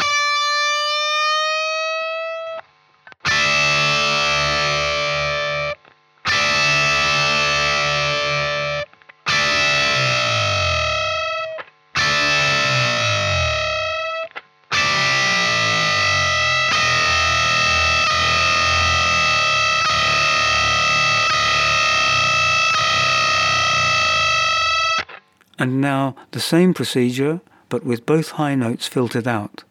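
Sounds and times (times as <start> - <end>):
heavily distorted electric guitar playing sustained string bends: 0.0 - 25.2
lower difference tone sliding downward: 9.4 - 14.2, 14.8 - 25.0
speech: 25.6 - 29.6.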